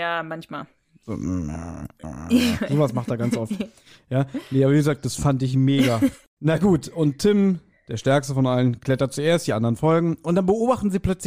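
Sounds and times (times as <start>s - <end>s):
speech: 0.0s - 11.2s
voice imitating a low quiet dog growl: 1.0s - 3.0s
laughter: 2.0s - 4.7s, 5.7s - 6.8s.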